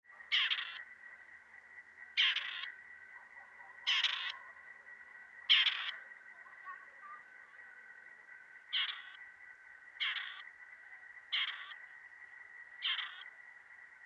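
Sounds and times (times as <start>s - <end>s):
constant high whine: 0.0s - 14.0s
grey partridge rasping call: 0.1s - 1.0s, 2.0s - 7.9s, 8.6s - 9.3s, 9.9s - 12.1s, 12.7s - 13.4s.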